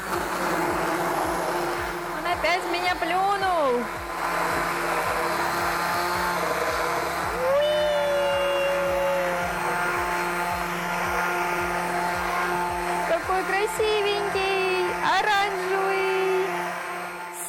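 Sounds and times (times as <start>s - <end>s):
blender pureeing soup: 0.0s - 17.4s
speech: 2.4s - 4.5s.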